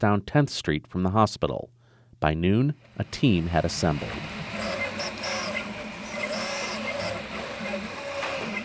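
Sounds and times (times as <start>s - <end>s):
speech: 0.0s - 4.4s
many 3D printers whirring with motor hums and stepper whines: 2.9s - 8.6s.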